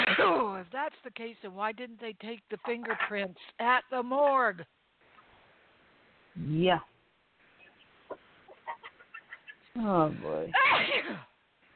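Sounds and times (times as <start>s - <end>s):
person sneezing: 0.0s - 0.5s, 10.5s - 11.4s
speech: 0.3s - 4.8s, 6.4s - 6.9s, 9.8s - 11.3s.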